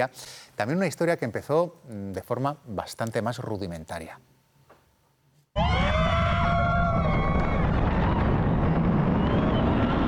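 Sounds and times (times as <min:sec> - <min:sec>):
speech: 0:00.0 - 0:04.4
crowd of roller coaster riders screaming: 0:05.6 - 0:10.0
heavy rushing rumble of a fast-moving roller coaster: 0:06.2 - 0:10.0.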